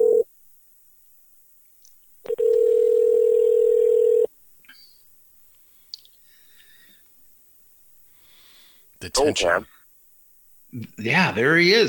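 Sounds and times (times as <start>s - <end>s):
telephone ring tone heard down the line: 0.0s - 0.2s, 2.3s - 4.3s
speech: 9.2s - 9.8s, 10.7s - 11.8s.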